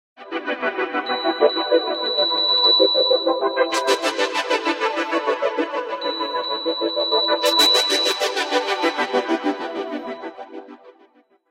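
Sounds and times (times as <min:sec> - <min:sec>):
ringtone: 0:01.0 - 0:10.1.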